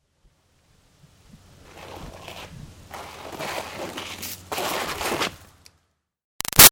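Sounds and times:
bicycle riding: 1.5s - 5.6s
feet dragging to stop a bicycle: 1.6s - 5.5s.

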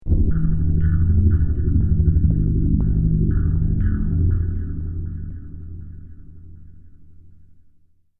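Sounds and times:
sinister dark metallic boom impact: 0.0s - 6.2s.

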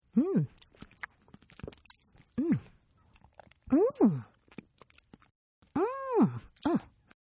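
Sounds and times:
human eating: 0.3s - 5.8s.

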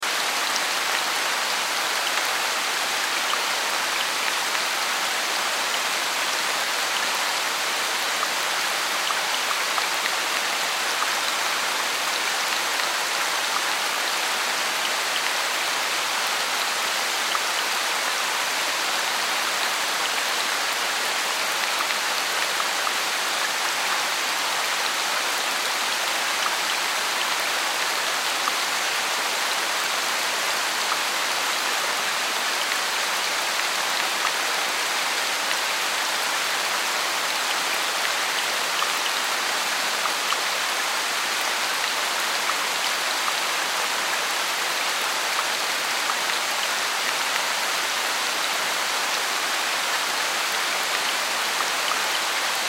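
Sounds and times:
heavy rain in a forest: 0.0s - 52.6s.

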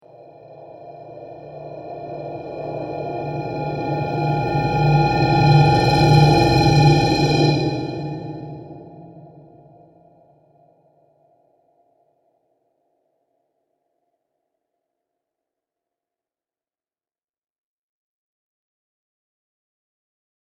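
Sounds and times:
dark and evil scary horror soundscape: 0.1s - 10.2s.

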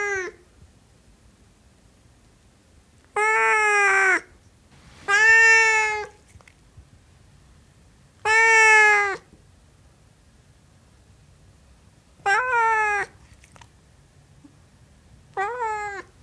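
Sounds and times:
Siamese cat meowing: 0.0s - 0.4s, 3.2s - 4.3s, 5.0s - 6.2s, 8.2s - 9.3s, 12.2s - 13.5s, 15.3s - 16.2s.

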